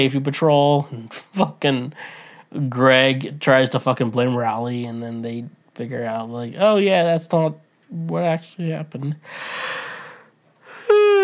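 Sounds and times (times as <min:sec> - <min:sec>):
speech: 0:00.0 - 0:09.8
person yawning: 0:09.5 - 0:11.2.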